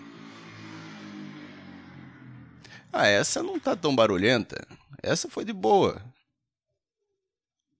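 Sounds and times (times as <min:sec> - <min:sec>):
motorcycle passing on the street: 0:00.0 - 0:05.0
speech: 0:02.9 - 0:06.2.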